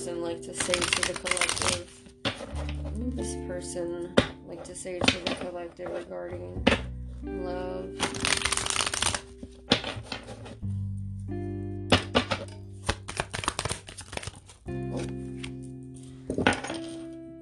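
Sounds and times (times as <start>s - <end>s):
speech: 0.0s - 8.6s
tarot cards being shuffled and falling on a floor: 0.5s - 3.0s, 5.0s - 6.0s, 8.0s - 10.6s, 11.9s - 17.2s.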